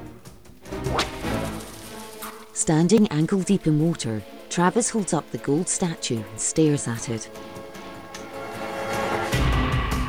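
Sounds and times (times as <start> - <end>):
low rushing background: 0.0 - 10.0
whip cracking: 0.7 - 2.5
speech: 2.6 - 7.6.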